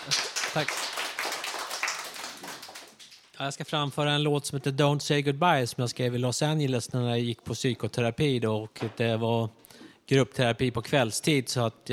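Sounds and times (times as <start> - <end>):
speech: 0.0 - 1.0, 3.4 - 11.9
crowd applause welcoming a performer: 0.0 - 3.2.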